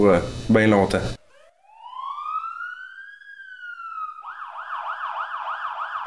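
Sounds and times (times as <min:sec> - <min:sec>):
speech: 0:00.0 - 0:01.2
fire truck siren wailing and yelping: 0:01.3 - 0:06.0.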